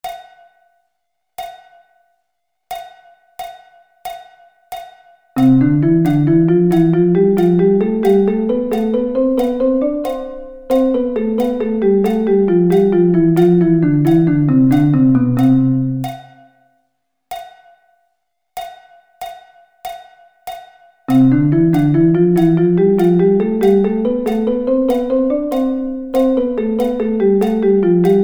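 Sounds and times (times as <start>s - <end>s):
drum double sticking in C: 5.4s - 16.4s, 21.1s - 28.2s.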